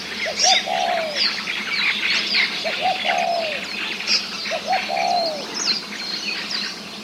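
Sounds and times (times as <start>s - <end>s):
Spotted Dove calling: 0.0s - 7.0s.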